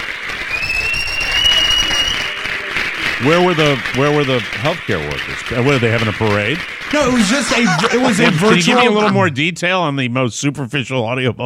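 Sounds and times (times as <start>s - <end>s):
large crowd applauding from streets and balconies: 0.0s - 9.3s
faint high whistle-like tone: 0.5s - 2.4s
speech: 3.2s - 11.4s
laughter: 6.9s - 9.5s.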